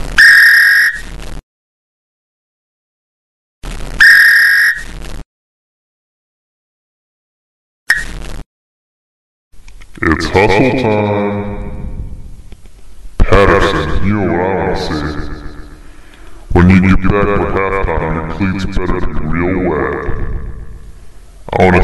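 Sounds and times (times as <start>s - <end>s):
football coach's whistle blasts: 0.2s - 1.1s, 4.0s - 4.9s
speech: 10.0s - 11.5s, 13.6s - 15.3s, 16.6s - 20.4s, 21.5s - 21.8s
faint rumble: 10.0s - 14.2s.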